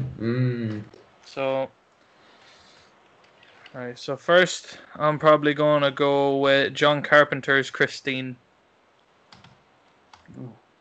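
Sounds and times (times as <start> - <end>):
speech: 0.2 - 1.8, 3.7 - 8.4, 10.3 - 10.6
typing on a computer keyboard: 9.3 - 10.3.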